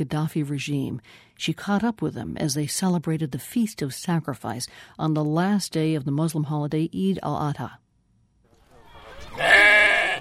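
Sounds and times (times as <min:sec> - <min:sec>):
speech: 0:00.0 - 0:07.8
sheep bleating while led on a leash in Tripoli during Eid al-Adha: 0:09.3 - 0:10.1.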